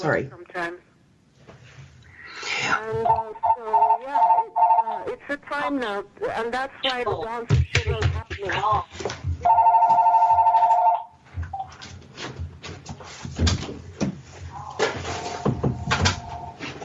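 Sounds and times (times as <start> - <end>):
speech: 0.0 - 0.8, 2.6 - 9.9
telephone ringing with electronic trill: 3.0 - 5.1, 9.4 - 11.2, 14.6 - 16.7
clattering and handling noises: 7.6 - 16.8.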